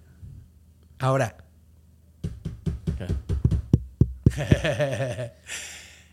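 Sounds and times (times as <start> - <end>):
speech: 1.0 - 1.4, 4.4 - 5.6
group knocking on a door: 2.2 - 4.9
laughter: 4.3 - 5.5.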